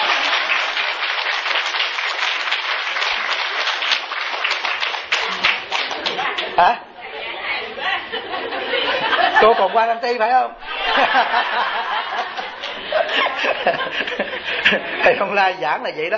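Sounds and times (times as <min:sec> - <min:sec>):
audience applauding: 0:00.0 - 0:06.6, 0:12.1 - 0:14.3
murmured chatter: 0:05.2 - 0:09.4
speech: 0:06.6 - 0:06.9, 0:09.4 - 0:12.2, 0:12.9 - 0:16.1
laughter: 0:07.2 - 0:15.3.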